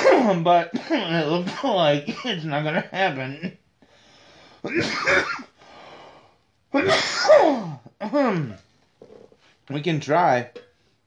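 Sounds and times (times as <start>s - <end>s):
person coughing harshly: 0.0s - 2.4s, 4.7s - 5.5s, 6.8s - 8.6s
speech: 0.2s - 3.6s, 4.6s - 5.5s, 6.7s - 8.6s, 9.7s - 10.6s.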